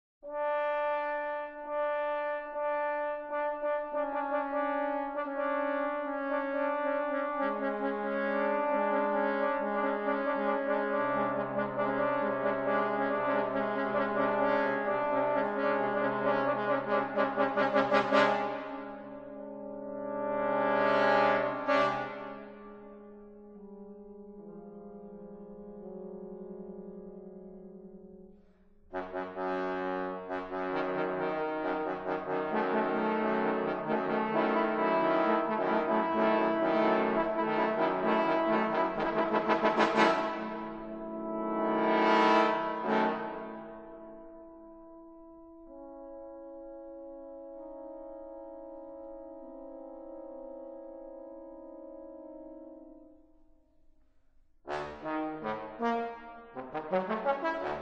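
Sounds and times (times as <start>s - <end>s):
four trombones playing a sonata: 0.3s - 22.6s, 28.9s - 44.0s, 54.7s - 57.8s.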